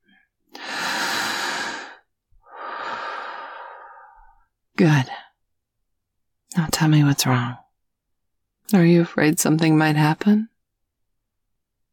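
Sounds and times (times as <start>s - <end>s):
deep slow breathing: 0.5s - 4.4s
speech: 4.8s - 5.2s, 6.8s - 7.6s, 8.7s - 10.5s.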